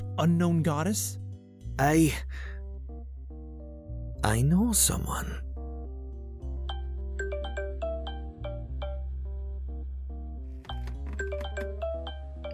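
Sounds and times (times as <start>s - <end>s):
speech: 0.2s - 2.5s, 4.2s - 5.4s
phone ringing with a melodic tune of bright chiming notes: 6.7s - 9.2s, 10.7s - 12.5s.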